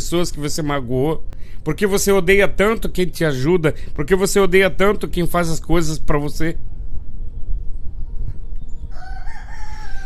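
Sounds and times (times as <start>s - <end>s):
low rumbling noise: 0.0s - 10.0s
speech: 0.1s - 6.7s
rooster crowing: 8.9s - 10.0s.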